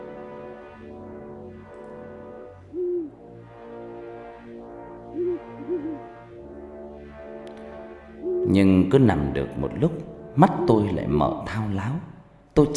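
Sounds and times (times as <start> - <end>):
steady droning background with slowly sweeping tones: 0.0 - 12.2
owl hooting at night: 2.7 - 3.2, 5.2 - 6.2, 8.2 - 8.6
speech: 8.5 - 12.7.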